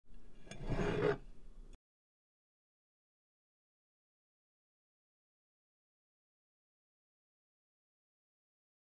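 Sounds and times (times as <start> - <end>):
mug sliding across table: 0.4 - 1.3.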